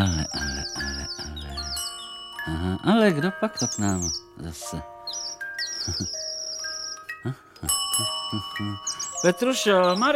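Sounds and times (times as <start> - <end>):
doorbell ringing with bright metallic tones: 1.6 - 10.1
speech: 2.7 - 5.2, 5.8 - 6.2, 7.2 - 10.1.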